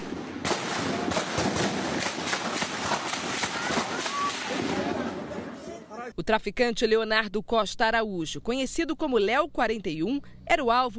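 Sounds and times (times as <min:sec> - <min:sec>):
sharp gunshots over a community: 0:00.0 - 0:05.4
speech: 0:06.3 - 0:10.9.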